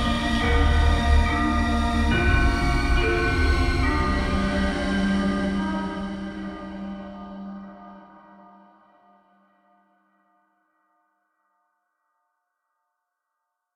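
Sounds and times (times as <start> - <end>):
train rumbling at the railway station in Bad Harzburg: 0.0 - 8.1.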